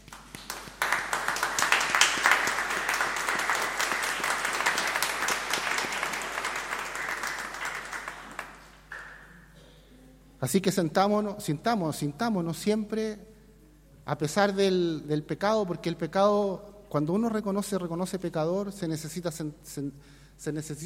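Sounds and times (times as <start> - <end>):
crowd of people applauding indoors: 0.0 - 9.2
speech: 10.4 - 13.3, 14.1 - 20.8.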